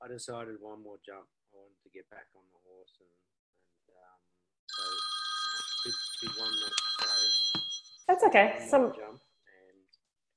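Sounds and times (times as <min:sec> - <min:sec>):
faint talk: 0:00.0 - 0:03.2, 0:03.9 - 0:04.2, 0:08.1 - 0:09.8
speech: 0:00.1 - 0:05.1, 0:05.8 - 0:09.2
mobile phone bright high electronic ringtone: 0:04.7 - 0:08.1.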